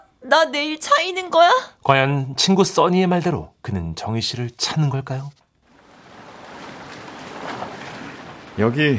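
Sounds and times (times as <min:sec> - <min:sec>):
speech: 0:00.3 - 0:05.4, 0:08.6 - 0:08.9
seaside waves washing onto a beach: 0:05.8 - 0:08.9.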